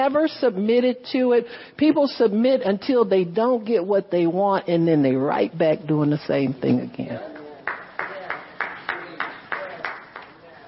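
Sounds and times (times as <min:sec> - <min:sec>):
speech: 0:00.0 - 0:07.3
sparse half-hearted audience hand clapping: 0:07.4 - 0:10.4.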